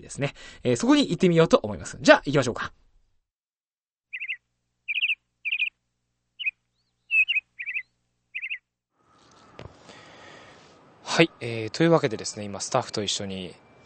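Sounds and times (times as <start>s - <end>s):
speech: 0.0s - 2.8s, 11.2s - 13.6s
birds singing in a city park in central Tokyo: 4.1s - 5.8s, 6.4s - 13.8s.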